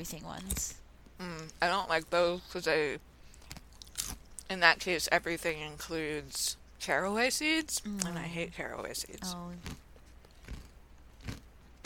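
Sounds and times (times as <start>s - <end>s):
speech: 0.0s - 3.1s, 4.5s - 9.8s
crunchy chewing of regular pretzel chips: 3.3s - 4.5s, 9.2s - 11.8s.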